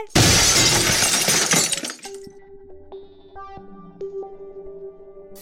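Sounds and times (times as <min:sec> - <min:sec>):
plate glass window shattering: 0:00.2 - 0:02.3.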